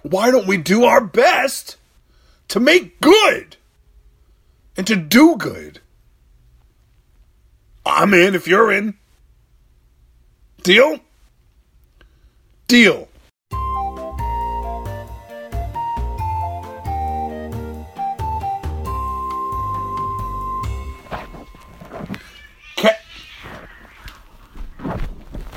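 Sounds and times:
speech: 0.1s - 1.8s, 2.5s - 3.6s, 4.8s - 5.8s, 7.9s - 9.0s, 10.6s - 11.1s, 12.7s - 13.1s
tonal music passage: 13.5s - 22.2s
cats fighting: 21.8s - 25.5s
cat yowling: 22.0s - 24.4s.

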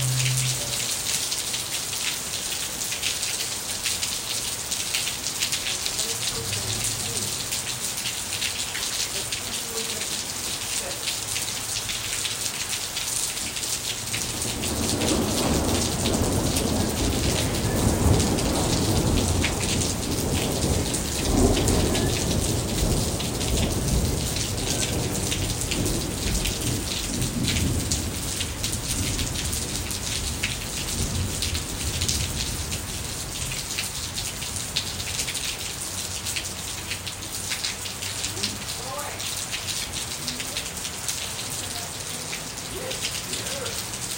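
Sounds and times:
low deep rumble: 0.0s - 0.8s
rain falling on surfaces: 0.0s - 44.1s.

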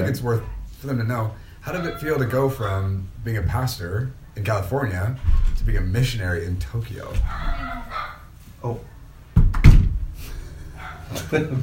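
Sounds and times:
speech: 0.0s - 8.9s, 11.1s - 11.6s
wooden door opening in a house: 7.1s - 7.8s, 9.4s - 10.1s
laughter: 11.0s - 11.6s.

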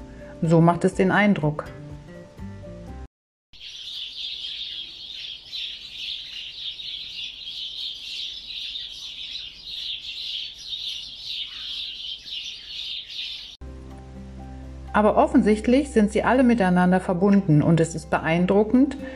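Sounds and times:
music: 0.0s - 3.1s, 13.6s - 19.1s
speech: 0.4s - 1.8s, 15.0s - 19.1s
flock of sparrows chirping: 3.6s - 13.6s.

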